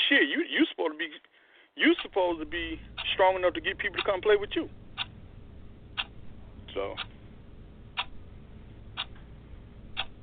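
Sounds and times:
low steady hum: 0.0s - 10.2s
speech: 0.1s - 1.2s, 1.8s - 4.8s, 6.8s - 7.2s
shot clock ticking sound effect: 2.9s - 5.2s, 5.9s - 6.2s, 6.8s - 7.2s, 7.9s - 8.2s, 8.9s - 9.2s, 9.9s - 10.2s.

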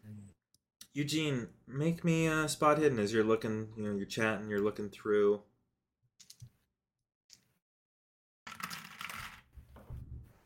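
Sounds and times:
speech: 1.0s - 5.5s
plastic dice rattling through a dice tower: 8.5s - 9.5s.

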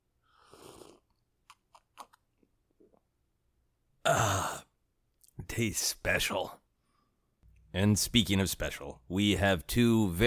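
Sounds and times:
soft inhale before sipping whiskey: 0.2s - 1.0s
small wet lip and swallow clicks while sipping whiskey: 0.6s - 3.0s
speech: 5.6s - 6.6s, 7.7s - 10.2s.

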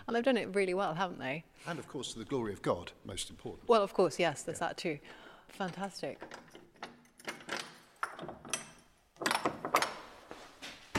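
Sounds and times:
speech: 0.1s - 6.6s
metal key scraping and clicking in a heavy church door lock: 6.2s - 10.0s.

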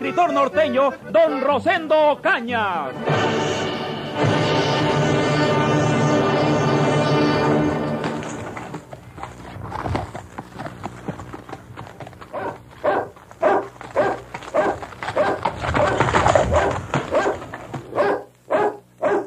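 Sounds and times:
speech: 0.0s - 3.5s
steady sustained musical drone: 2.8s - 11.3s
horse hooves clip-clopping: 7.6s - 19.2s.

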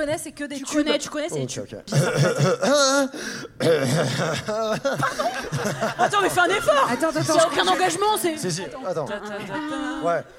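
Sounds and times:
speech: 0.0s - 10.3s
person coughing with a throaty rasping edge: 1.9s - 4.4s
laughter: 3.6s - 10.3s.

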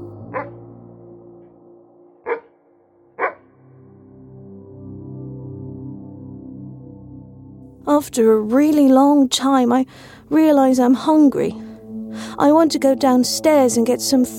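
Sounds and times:
steady low droning background: 0.0s - 14.3s
dog barking: 2.2s - 2.5s, 3.2s - 3.4s
speech: 8.0s - 14.3s.

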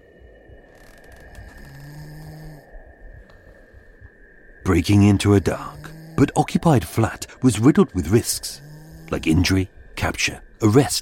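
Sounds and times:
steady high-pitched electrical hum: 0.0s - 10.6s
low rumble: 0.0s - 10.9s
man snoring: 1.4s - 2.6s, 5.2s - 6.7s, 8.1s - 9.6s
speech: 4.7s - 10.9s.

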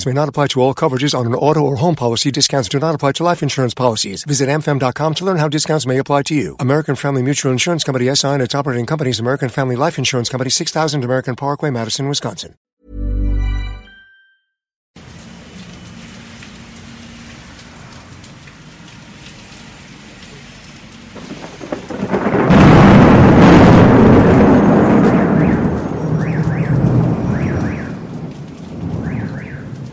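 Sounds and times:
speech: 0.0s - 13.1s
heavy rain from a July winter thunderstorm in Ethiopia: 15.0s - 29.9s
loud rumbling thunder in Ethiopia: 21.1s - 29.9s.

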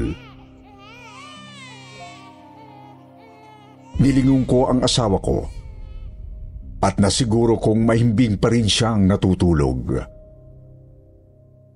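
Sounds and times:
babies wailing in long wavering cries: 0.0s - 6.1s
speech: 4.0s - 5.6s, 6.8s - 10.1s.

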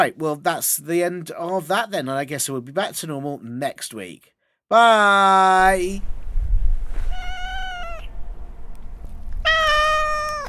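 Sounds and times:
speech: 0.0s - 6.2s
low rumbling noise: 5.6s - 10.4s
cat meowing to come in: 7.0s - 8.1s, 9.4s - 10.4s.

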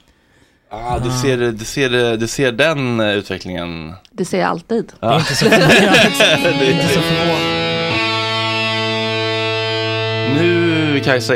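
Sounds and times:
speech: 0.7s - 7.6s, 10.3s - 11.3s
laughter: 5.0s - 7.6s
distorted electric guitar jingle: 5.3s - 11.3s.

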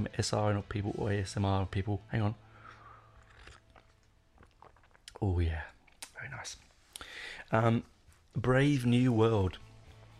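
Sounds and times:
speech: 0.0s - 2.4s, 5.2s - 5.7s, 6.3s - 6.6s, 7.5s - 9.6s
sipping tea: 2.5s - 7.4s.

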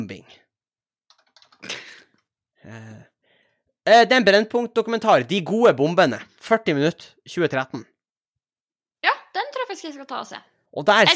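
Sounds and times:
typing on a computer keyboard: 1.1s - 1.9s
speech: 2.6s - 3.1s, 3.9s - 7.9s, 9.4s - 11.1s.

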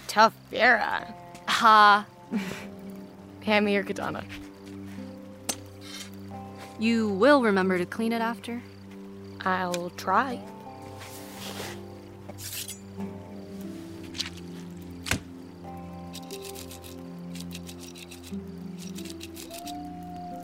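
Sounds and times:
speech: 0.2s - 2.7s, 3.4s - 4.5s, 6.8s - 8.7s, 9.4s - 10.5s
pack of coyotes howling: 18.8s - 20.4s
coyote yips: 19.4s - 20.4s.

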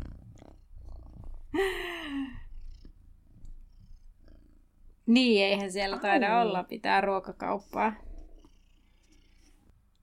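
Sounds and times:
cat purring: 0.0s - 5.1s, 7.9s - 9.7s
speech: 1.5s - 2.3s, 5.1s - 8.1s.

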